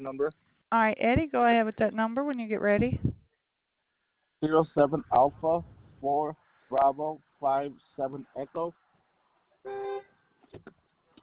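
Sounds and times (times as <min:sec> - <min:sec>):
speech: 0:00.0 - 0:03.1, 0:04.4 - 0:08.8, 0:09.6 - 0:10.8
car horn honked by a clipboard pressed against the steering wheel: 0:09.7 - 0:10.1.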